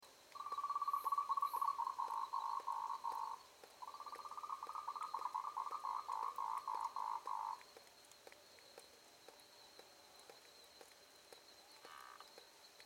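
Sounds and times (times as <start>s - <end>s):
frog pulsed trilling in the evening: 0.4s - 7.6s.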